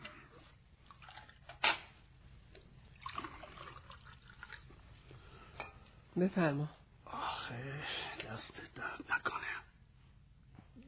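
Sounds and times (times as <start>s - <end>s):
water poured into a glass: 0.9s - 1.6s, 2.8s - 4.7s
speech: 6.2s - 6.8s, 7.5s - 9.7s.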